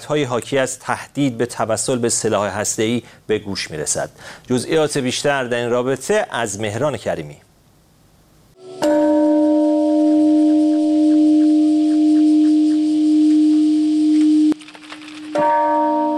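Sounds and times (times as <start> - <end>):
speech: 0.1 - 7.5
peace bells ringing at the peace memorial park in Hiroshima: 8.6 - 14.5, 15.4 - 16.1.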